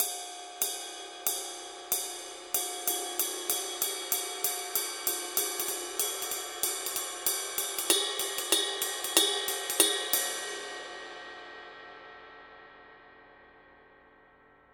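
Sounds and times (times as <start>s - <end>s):
ride cymbal pattern: 0.0s - 11.0s.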